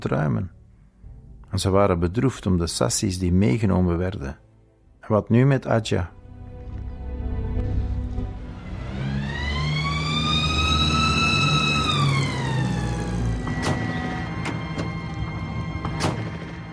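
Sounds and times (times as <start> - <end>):
speech: 0.0 - 0.6, 1.5 - 4.4, 5.1 - 6.2
traffic rumble: 7.6 - 16.7
police siren wailing: 8.4 - 16.7.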